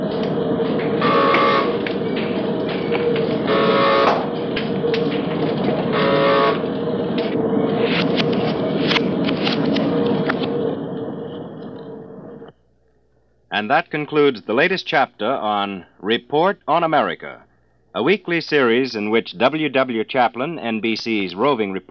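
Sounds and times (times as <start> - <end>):
raw tire rubber for inner tubes worked through steel rollers: 0.0 - 10.5
speech: 13.6 - 21.8.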